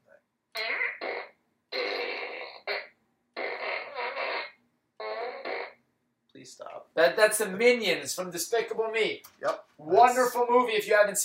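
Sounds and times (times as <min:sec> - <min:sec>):
toy fart gun blasting fart noises: 0:00.6 - 0:05.8
speech: 0:06.4 - 0:11.2.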